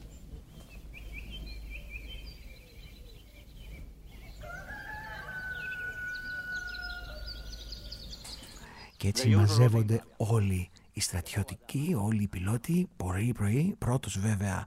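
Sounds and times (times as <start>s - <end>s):
small birds chirping and twittering: 0.0s - 14.6s
rooster crowing in the countryside: 4.4s - 8.1s
speech: 9.0s - 14.6s.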